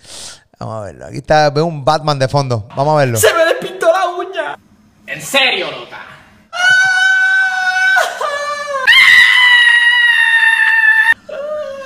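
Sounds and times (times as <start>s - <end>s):
speech: 0.6s - 3.5s, 5.2s - 6.0s
person practicing different types of long piercing screams: 6.5s - 11.8s.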